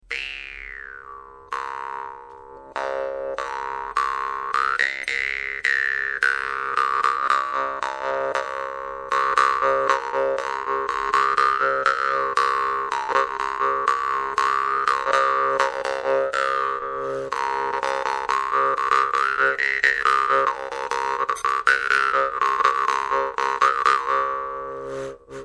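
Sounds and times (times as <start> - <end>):
Belarusian jaw harp: 0.1 - 24.1.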